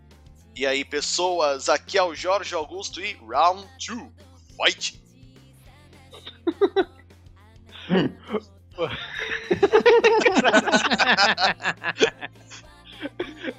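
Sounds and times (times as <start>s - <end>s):
speech: 0.6s - 5.0s, 6.6s - 7.0s, 7.9s - 13.5s
quick breathy laughter or excited voices: 6.2s - 6.9s, 7.8s - 13.5s
person coughing: 7.8s - 12.2s, 13.0s - 13.5s.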